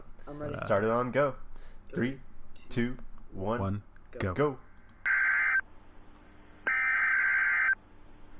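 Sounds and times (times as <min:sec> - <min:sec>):
speech: 0:00.3 - 0:04.7
steady electronic telephone dial tone: 0:06.7 - 0:07.8.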